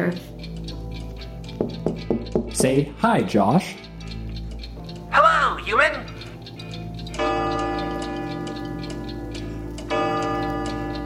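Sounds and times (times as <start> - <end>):
speech: 0.0 - 0.5, 1.6 - 3.9
many clocks ticking at once: 0.0 - 11.0.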